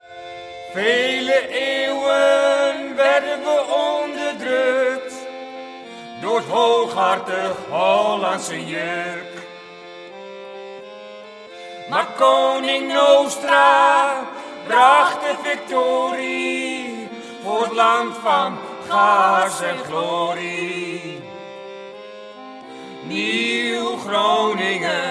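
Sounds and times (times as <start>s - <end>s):
folk song: 0.0s - 25.0s.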